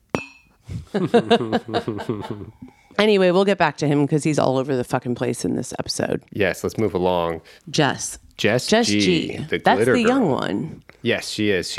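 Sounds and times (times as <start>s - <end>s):
shot glasses clinking in a toast: 0.1s - 0.6s
laughter: 0.8s - 2.6s
speech: 0.9s - 11.7s.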